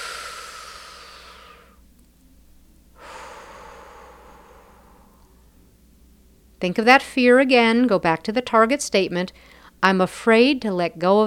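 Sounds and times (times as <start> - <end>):
deep breath: 0.0 - 1.8, 3.0 - 5.5, 9.4 - 9.8
speech: 6.6 - 11.2.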